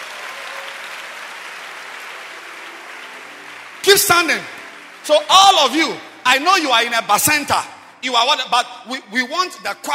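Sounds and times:
church congregation clapping their hands: 0:00.0 - 0:07.2
speech: 0:03.9 - 0:09.9.

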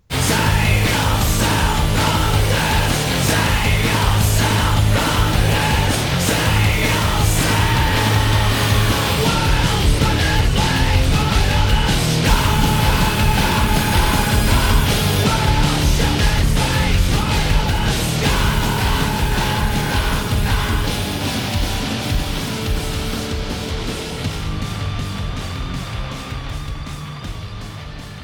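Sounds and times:
pounding drums: 0:00.0 - 0:27.7
distorted guitars: 0:00.0 - 0:28.2
loud dense metal song: 0:00.0 - 0:28.2
intense screamed male vocals: 0:00.1 - 0:21.3.

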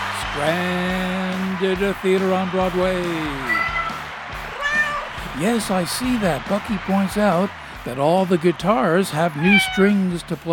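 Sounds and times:
laughter: 0:00.0 - 0:10.5
speech: 0:00.4 - 0:03.7, 0:05.4 - 0:10.5
cat meowing: 0:03.5 - 0:04.0, 0:04.6 - 0:05.1, 0:09.4 - 0:09.9.

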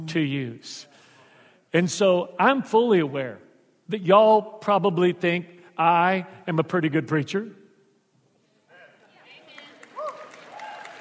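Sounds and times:
speech: 0:00.1 - 0:00.9, 0:01.7 - 0:07.6
audience applause: 0:09.5 - 0:10.9
crowd voices and whoops: 0:09.9 - 0:10.9.

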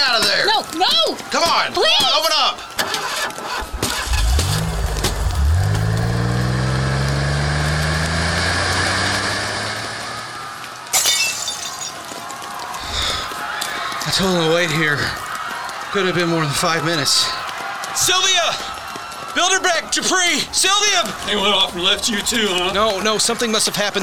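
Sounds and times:
rough noise: 0:00.0 - 0:07.5, 0:10.0 - 0:24.0
speech: 0:00.3 - 0:02.7, 0:14.2 - 0:15.2, 0:15.9 - 0:17.4, 0:18.0 - 0:18.7, 0:19.4 - 0:24.0
truck engine starting and revving: 0:03.4 - 0:10.7.

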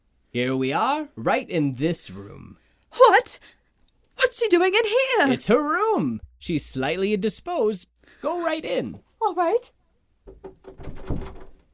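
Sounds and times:
speech: 0:00.3 - 0:03.6, 0:04.2 - 0:11.4
handle of a locked door rattled and jiggled: 0:10.6 - 0:11.6.

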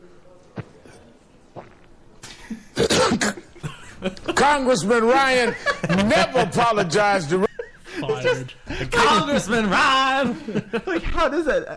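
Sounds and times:
man's throat rumbling and clearing in a cough-like hack: 0:02.3 - 0:03.9
laughter: 0:03.4 - 0:11.7
speech: 0:04.0 - 0:07.5, 0:08.3 - 0:11.7.

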